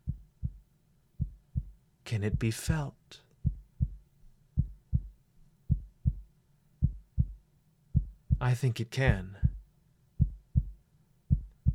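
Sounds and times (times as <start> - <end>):
soft steady heartbeat: 0.0 - 4.0, 4.6 - 8.5, 9.1 - 11.7
speech: 2.1 - 3.2, 8.4 - 9.4.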